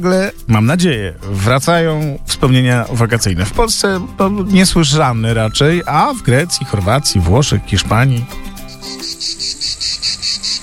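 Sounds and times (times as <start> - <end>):
speech: 0.0 - 9.5
cicadas chirping: 5.3 - 10.6.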